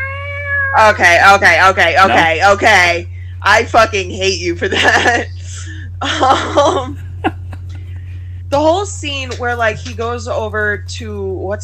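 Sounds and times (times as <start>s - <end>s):
person imitating a cat yowling as if grabbed by the tail: 0.0s - 1.0s, 2.0s - 2.3s
low constant hum: 0.0s - 11.6s
speech: 0.8s - 7.4s, 8.5s - 11.6s
laughter: 2.0s - 2.4s, 4.6s - 8.2s.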